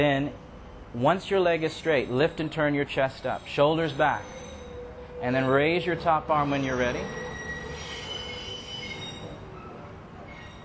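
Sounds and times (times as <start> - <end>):
speech: 0.0 - 4.4, 5.2 - 7.2
passing train rumbling: 0.0 - 10.6
train wheels squealing: 0.2 - 10.6.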